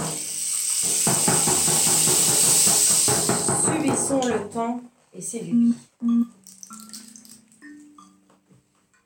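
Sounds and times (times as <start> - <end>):
steady rain hissing: 0.0 - 3.6
speech: 3.8 - 6.9.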